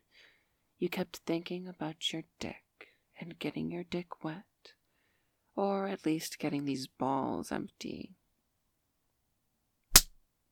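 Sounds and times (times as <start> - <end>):
speech: 0.8 - 2.6, 3.2 - 4.8, 5.6 - 8.2
hard spank slapped onto bare buttocks: 9.9 - 10.2.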